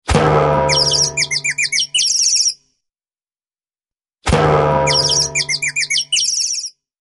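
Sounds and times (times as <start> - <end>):
cartoon hit alert: 0.1 - 1.9, 4.2 - 6.1.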